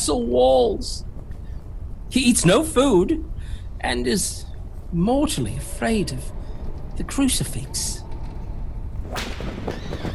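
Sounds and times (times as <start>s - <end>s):
speech: 0.0s - 1.1s, 2.1s - 6.4s, 7.0s - 8.0s
low steady rumble: 0.0s - 10.1s
whip cracking: 9.1s - 10.0s.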